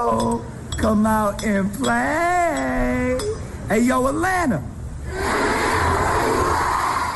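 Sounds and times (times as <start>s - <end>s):
speech: 0.0s - 5.4s
large crowd roaring and yelling: 5.1s - 7.1s.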